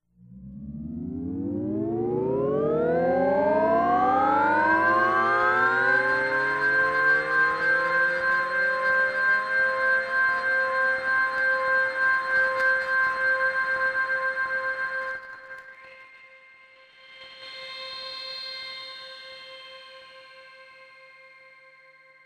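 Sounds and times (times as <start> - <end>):
drone on C: 0.2 - 15.2.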